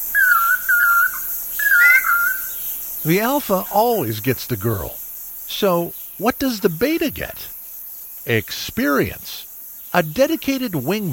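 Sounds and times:
Lance-tailed Manakin giving clear whistled calls with wavering pitch: 0:00.0 - 0:02.6
speech: 0:03.0 - 0:07.5, 0:08.2 - 0:11.1.

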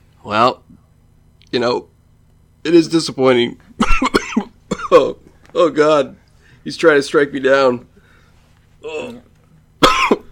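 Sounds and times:
low hum: 0:00.0 - 0:10.2
speech: 0:00.2 - 0:00.8, 0:01.5 - 0:01.9, 0:02.6 - 0:04.2, 0:04.9 - 0:07.9, 0:08.8 - 0:09.3
person coughing: 0:03.8 - 0:05.2, 0:09.8 - 0:10.2.

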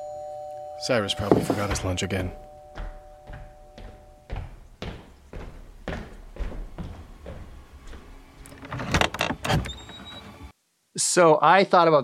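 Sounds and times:
speech: 0:00.8 - 0:02.5, 0:11.2 - 0:12.0
footsteps thudding down a long entryway of a large house: 0:01.2 - 0:08.4
front door creaking as it swings open: 0:08.4 - 0:10.5.

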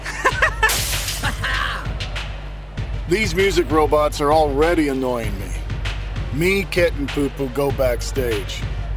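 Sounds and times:
laughter: 0:00.0 - 0:01.8
glass shattering: 0:00.6 - 0:01.8
furniture being smashed by a rock band: 0:00.7 - 0:01.6
speech: 0:03.1 - 0:05.6, 0:06.3 - 0:08.8.

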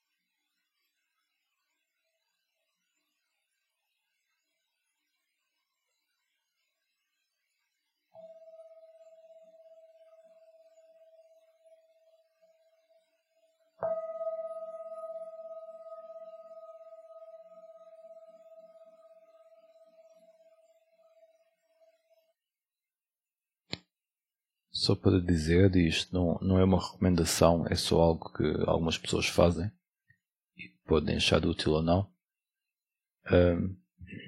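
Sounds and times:
meditation gong ringing: 0:13.8 - 0:20.1
speech: 0:24.8 - 0:29.8, 0:30.6 - 0:32.1, 0:33.3 - 0:34.2.

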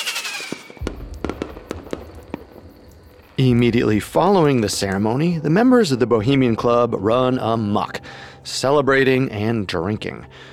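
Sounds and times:
fireworks exploding above a lake: 0:00.0 - 0:04.6
speech: 0:03.4 - 0:10.5.

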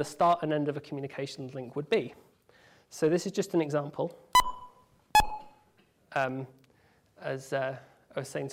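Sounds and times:
speech: 0:00.0 - 0:02.3, 0:02.9 - 0:04.3, 0:06.1 - 0:06.6, 0:07.2 - 0:08.5
short electronic beeps: 0:04.4 - 0:05.6.

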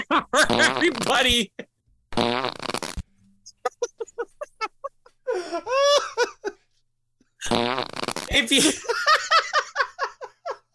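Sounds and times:
speech: 0:00.1 - 0:01.7, 0:08.4 - 0:09.4
wet sputtering fart sound effect: 0:00.4 - 0:01.3, 0:02.1 - 0:03.1, 0:07.4 - 0:08.4
people laughing: 0:03.5 - 0:06.6, 0:08.6 - 0:10.7.

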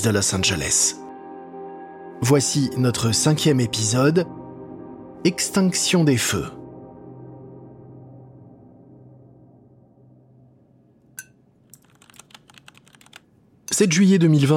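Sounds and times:
speech: 0:00.0 - 0:01.0, 0:02.2 - 0:04.4, 0:05.2 - 0:06.6, 0:13.8 - 0:14.5
low hum: 0:06.4 - 0:11.8
keystrokes on a laptop keyboard as someone browses over breakfast: 0:11.7 - 0:13.3.

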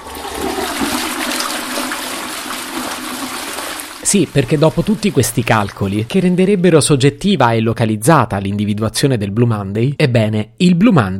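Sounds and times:
toilet flushing: 0:00.0 - 0:06.6
speech: 0:04.1 - 0:11.1.

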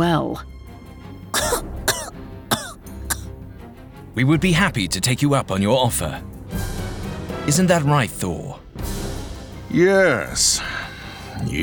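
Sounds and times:
speech: 0:00.0 - 0:00.6, 0:04.2 - 0:06.4, 0:07.4 - 0:08.9, 0:09.7 - 0:11.6
child coughing in short harsh bursts: 0:01.4 - 0:03.3.

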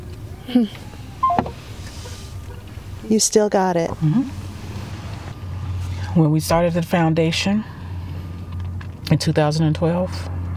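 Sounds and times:
speech: 0:00.5 - 0:01.0, 0:03.0 - 0:04.4, 0:06.1 - 0:07.7, 0:09.1 - 0:10.4
electronic phone tones after a voicemail greeting: 0:01.2 - 0:01.6.

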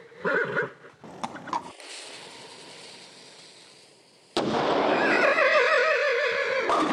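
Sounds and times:
horse whinnying and neighing: 0:00.0 - 0:01.6, 0:04.9 - 0:06.8
cannon firing with loud boom and sustained roar: 0:04.4 - 0:05.1.

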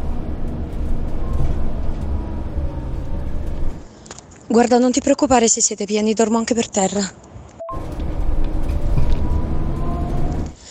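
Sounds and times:
coach bus engine rumble: 0:00.0 - 0:10.6
road noise inside a moving coach bus: 0:00.0 - 0:10.6
speech: 0:04.5 - 0:07.8.

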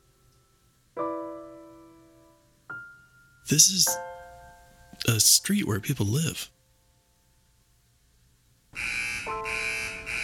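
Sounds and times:
speech: 0:03.5 - 0:04.1, 0:05.0 - 0:06.6
loud harsh electronic car wash alarm buzzer: 0:08.8 - 0:10.2.

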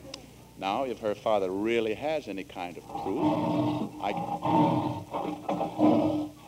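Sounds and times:
speech: 0:00.6 - 0:06.3
lion roaring: 0:02.8 - 0:06.4.

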